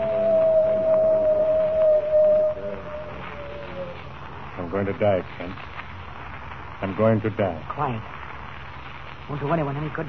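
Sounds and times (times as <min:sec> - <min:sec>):
coyote howling: 0:00.0 - 0:04.3
low rumbling background: 0:00.0 - 0:06.8
speech: 0:04.8 - 0:05.7, 0:06.8 - 0:08.2, 0:09.3 - 0:10.0.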